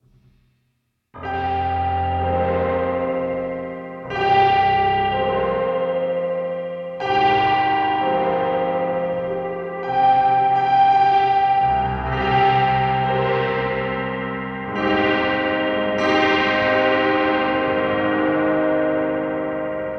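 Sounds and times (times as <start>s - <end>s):
piano loop on tape with multiple effects: 1.2s - 19.9s.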